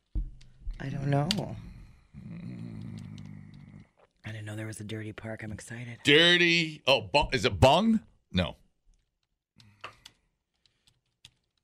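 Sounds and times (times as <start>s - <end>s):
speech: 0.8s - 2.4s, 4.4s - 8.6s
computer keyboard typing: 9.6s - 11.6s.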